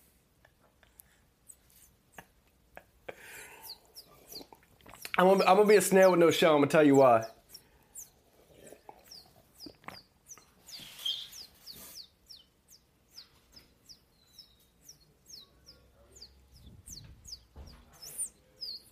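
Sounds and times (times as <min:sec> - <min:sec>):
bird chirping: 0:03.2 - 0:18.8
speech: 0:05.2 - 0:07.4
faint low rumbling noise: 0:14.9 - 0:18.1.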